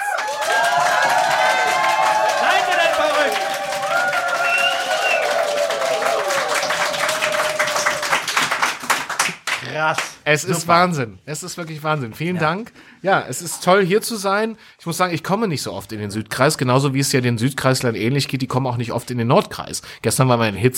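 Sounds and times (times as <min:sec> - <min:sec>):
crowd whooping and shouting: 0:00.0 - 0:08.4
large live audience clapping: 0:00.0 - 0:10.6
speech: 0:09.8 - 0:20.7.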